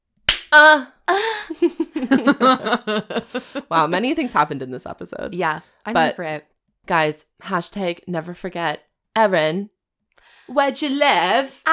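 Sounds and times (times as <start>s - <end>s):
hand slap: 0.2s - 0.6s
speech: 0.5s - 9.7s, 10.5s - 11.7s
laughter: 1.6s - 4.1s.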